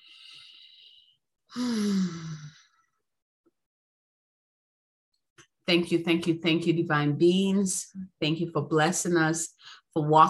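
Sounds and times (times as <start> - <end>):
voiced sighing exhale: 0.0 - 2.6
deep breath during a guided meditation: 0.0 - 2.7
speech: 1.5 - 2.2, 5.7 - 10.2.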